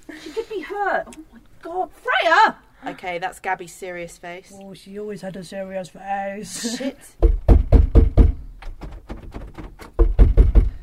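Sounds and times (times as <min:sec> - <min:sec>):
speech: 0:00.8 - 0:07.4
heavy knocking on a door: 0:07.2 - 0:10.8.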